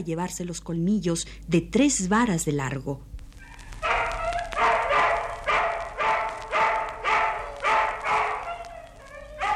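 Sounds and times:
speech: 0.0s - 3.1s
hungry dogs barking: 3.4s - 9.5s.

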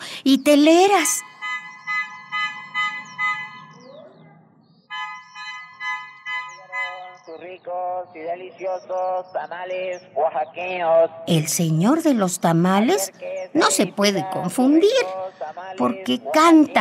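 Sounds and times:
speech: 0.2s - 1.3s, 8.0s - 16.7s
horn on a sweet-bread vendor's bicycle honking: 1.2s - 4.0s, 4.9s - 7.3s.

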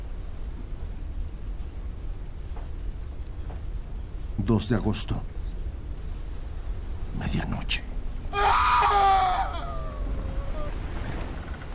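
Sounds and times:
faint windy hiss: 0.0s - 11.7s
speech: 4.4s - 5.4s
scream of pain aboard a ship at midnight in fog: 8.3s - 10.8s.

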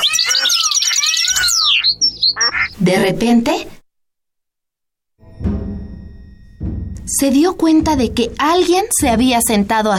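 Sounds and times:
birds chirping in a park: 0.0s - 3.0s
speech: 2.8s - 3.8s, 7.1s - 9.9s.

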